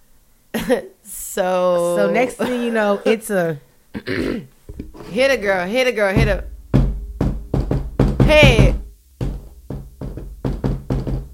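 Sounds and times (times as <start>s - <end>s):
speech: 0.7s - 6.5s, 8.3s - 8.8s
rhythmic syncopated knocks on a hollow surface: 6.2s - 11.3s.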